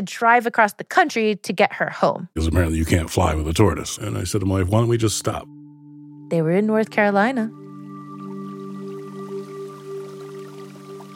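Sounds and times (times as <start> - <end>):
speech: 0.0 - 5.6, 6.3 - 7.6
water running and trickling through a feed trough: 6.8 - 11.1.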